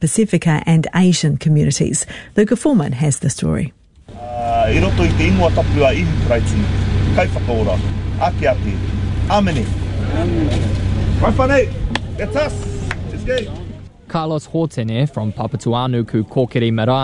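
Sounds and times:
speech: 0:00.0 - 0:03.8, 0:04.7 - 0:12.7, 0:13.3 - 0:17.0
car engines idling in a car park queue: 0:04.0 - 0:15.4
people talking and calling out outdoors: 0:04.1 - 0:17.0.

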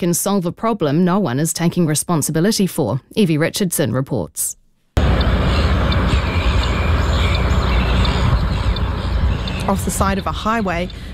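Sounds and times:
speech: 0:00.0 - 0:04.6, 0:09.6 - 0:11.0
large flock of seagulls squawking: 0:05.0 - 0:11.1.

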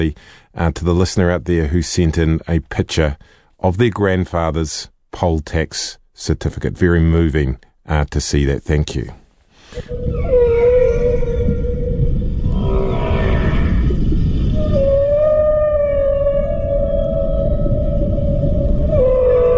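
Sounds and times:
speech: 0:00.0 - 0:10.7
constant low underwater rumble: 0:09.8 - 0:19.5
southern right whale calling in tonal moans: 0:09.8 - 0:19.5.

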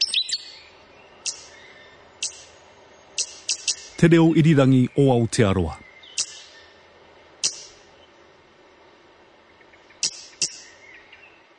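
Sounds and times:
hihi stitchbird giving sharp high-pitched calls: 0:00.0 - 0:06.8, 0:07.4 - 0:07.9, 0:09.5 - 0:11.4
speech: 0:04.0 - 0:05.9.

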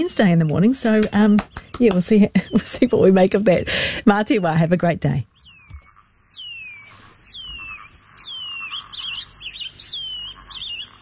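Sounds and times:
speech: 0:00.0 - 0:05.3
shining cuckoo calling: 0:05.4 - 0:11.0.

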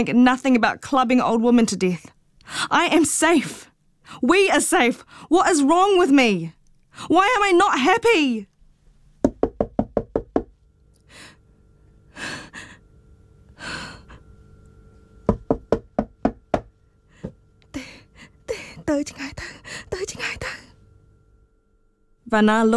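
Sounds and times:
speech: 0:00.0 - 0:08.5, 0:18.9 - 0:20.6, 0:22.3 - 0:22.7
man knocking sharply and rapidly on a door: 0:09.2 - 0:10.6, 0:15.2 - 0:17.4.

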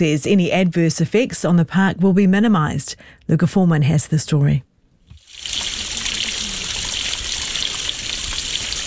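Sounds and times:
speech: 0:00.0 - 0:04.7
stormwater pouring from a pipe into a stream in a park north of Auckland: 0:05.2 - 0:08.8.

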